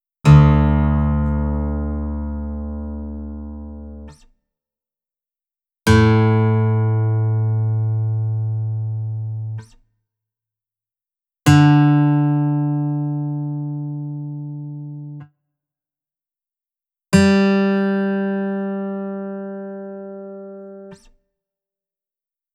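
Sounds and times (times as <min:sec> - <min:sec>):
guitar in D modal tuning: 0:00.2 - 0:04.2, 0:05.9 - 0:09.7, 0:11.5 - 0:15.2, 0:17.3 - 0:21.0.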